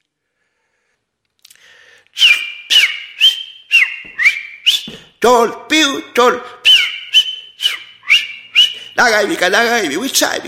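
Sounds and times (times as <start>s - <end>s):
person whistling imitation of clock bird call: 2.2s - 5.1s, 6.6s - 9.0s
speech: 5.2s - 6.6s, 9.0s - 10.4s.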